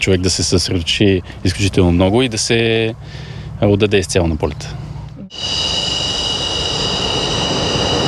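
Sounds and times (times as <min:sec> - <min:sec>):
speech: 0:00.0 - 0:05.7
piercing high whine of F-16 fighter jet engine: 0:04.8 - 0:08.0
F-16 fighter jet taking off: 0:05.3 - 0:08.0.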